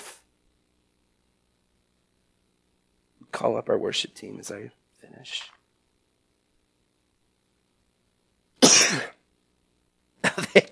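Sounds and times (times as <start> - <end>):
speech: 3.3 - 5.6, 10.6 - 10.7
person coughing with raspy throat clearing: 8.6 - 9.2, 10.2 - 10.7.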